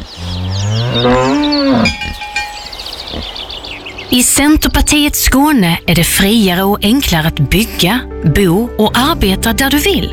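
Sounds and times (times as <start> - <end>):
cow mooing in rural Skåne, Sweden: 0.0 - 2.3, 2.9 - 3.4
quiet outdoor sounds in rural Skåne countryside: 0.0 - 6.6
speech: 1.0 - 1.5, 4.1 - 10.1.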